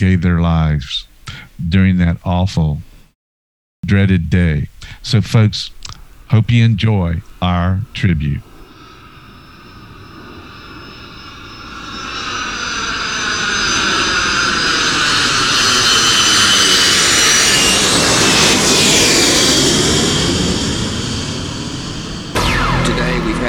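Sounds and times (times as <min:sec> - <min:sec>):
speech: 0:00.0 - 0:02.9, 0:03.8 - 0:08.5
jet airplane engine roaring passing overhead: 0:08.4 - 0:23.4.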